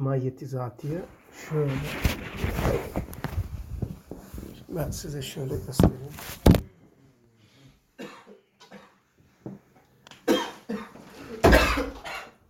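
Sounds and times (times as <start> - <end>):
speech: 0.0 - 3.2, 4.7 - 6.6
person coughing harshly: 8.0 - 9.0, 10.2 - 12.4.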